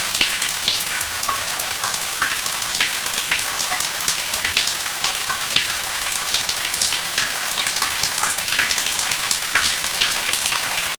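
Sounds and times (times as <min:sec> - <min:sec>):
rain: 0:00.0 - 0:10.9.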